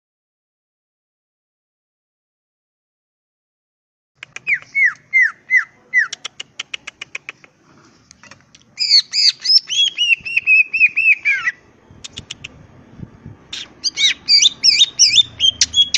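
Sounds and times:
greater green leafbird song with falling whistles and warble: 0:04.3 - 0:06.2, 0:08.8 - 0:15.9.

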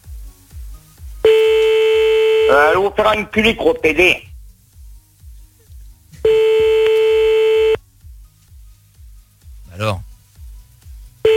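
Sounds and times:
low pulsing beat: 0:00.0 - 0:11.3
steady electronic telephone line tone of a redialled call: 0:01.3 - 0:02.8, 0:06.3 - 0:07.8
speech: 0:02.5 - 0:04.3.

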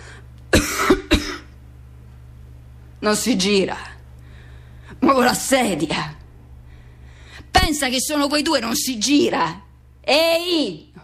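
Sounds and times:
faint steady hum: 0:00.0 - 0:11.0
person coughing: 0:00.5 - 0:01.6
speech: 0:03.0 - 0:03.9, 0:05.1 - 0:06.2, 0:07.7 - 0:11.0.

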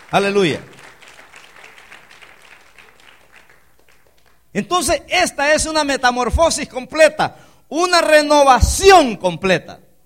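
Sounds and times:
church congregation applauding during a sermon: 0:00.0 - 0:04.6
speech: 0:00.1 - 0:00.7, 0:04.5 - 0:09.8.

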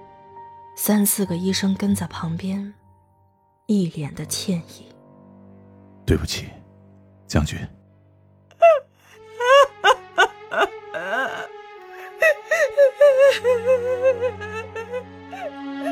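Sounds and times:
speech: 0:00.8 - 0:02.8, 0:03.7 - 0:05.0, 0:06.1 - 0:06.6, 0:07.3 - 0:07.8
mother sobbing in grief: 0:08.5 - 0:15.8
mother wailing in grief: 0:08.6 - 0:15.8.

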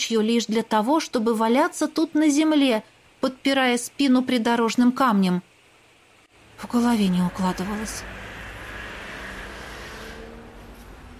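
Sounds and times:
speech: 0:00.1 - 0:05.5, 0:06.6 - 0:08.2
car approaching along a roadside at night: 0:06.3 - 0:11.1
car engine and tyre rumble: 0:06.3 - 0:11.1.

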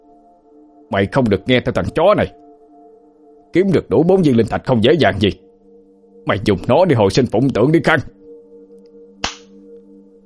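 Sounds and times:
speech: 0:00.9 - 0:02.4, 0:03.6 - 0:05.4, 0:06.2 - 0:08.2
slap across the face, audio drama sound effect: 0:09.2 - 0:09.6.

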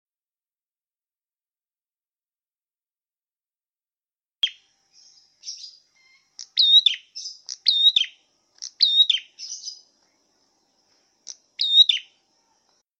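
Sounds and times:
red-headed prenjak prinia song: 0:04.4 - 0:12.8.

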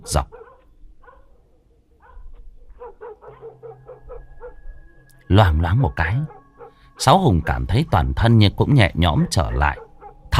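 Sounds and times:
dog barking: 0:00.0 - 0:04.8, 0:06.2 - 0:06.9, 0:09.3 - 0:10.3
speech: 0:00.1 - 0:00.4, 0:05.3 - 0:06.4, 0:07.0 - 0:10.3.

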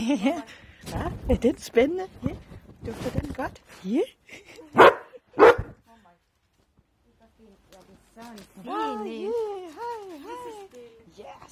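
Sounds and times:
speech: 0:00.0 - 0:05.0, 0:07.4 - 0:11.5
dog barking for attention: 0:04.8 - 0:05.8.

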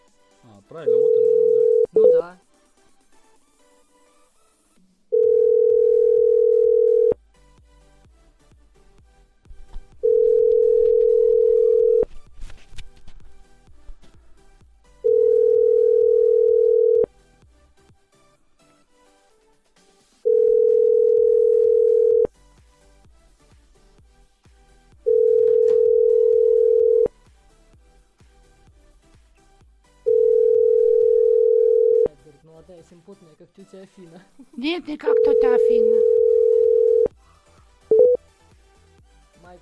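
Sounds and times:
speech: 0:00.6 - 0:02.4, 0:33.7 - 0:36.4
ringback tone on a phone call being dialed: 0:00.9 - 0:02.2, 0:05.1 - 0:07.2, 0:10.0 - 0:12.1, 0:15.0 - 0:17.1, 0:20.2 - 0:22.3, 0:25.1 - 0:27.1, 0:30.1 - 0:32.1, 0:35.1 - 0:37.1, 0:37.9 - 0:38.2.

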